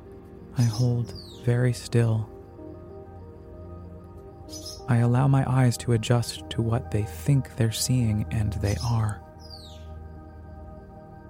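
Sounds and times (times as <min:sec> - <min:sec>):
bird flying circles around a bedroom chirping: 0:00.5 - 0:02.3, 0:04.3 - 0:05.4, 0:07.1 - 0:10.3
speech: 0:00.6 - 0:02.4, 0:04.9 - 0:09.2.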